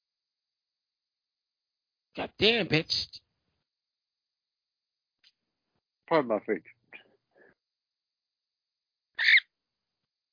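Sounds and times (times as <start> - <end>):
speech: 2.2 - 3.2, 6.1 - 6.8
pet bird chirping: 9.2 - 9.5.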